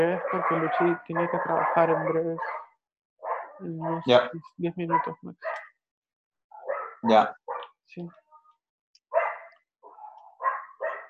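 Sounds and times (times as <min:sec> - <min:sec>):
speech: 0:00.0 - 0:02.6, 0:03.6 - 0:05.6, 0:07.0 - 0:08.2
several neighborhood dogs barking: 0:00.1 - 0:04.0, 0:04.9 - 0:05.7, 0:06.5 - 0:07.7, 0:09.1 - 0:11.0
dog drawn-out yelping call: 0:00.2 - 0:03.6, 0:06.6 - 0:07.7, 0:09.1 - 0:11.0.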